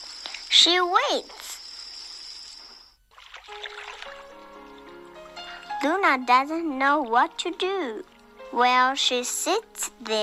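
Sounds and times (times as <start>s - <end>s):
speech: 0.6s - 1.5s, 5.8s - 10.2s
gentle water trickling and dribbling: 1.6s - 10.1s
soft splash of a fish pushed from a boat into the sea: 3.1s - 5.8s.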